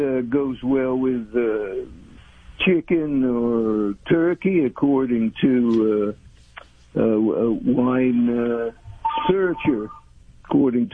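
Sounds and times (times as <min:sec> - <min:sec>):
speech: 0:00.0 - 0:02.0, 0:02.6 - 0:06.2, 0:06.9 - 0:10.9
telephone ringing: 0:09.0 - 0:10.1.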